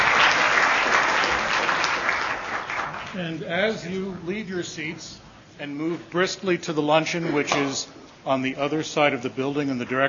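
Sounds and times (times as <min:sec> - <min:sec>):
audience applauding a panel: 0:00.0 - 0:03.4
speech: 0:03.2 - 0:10.0.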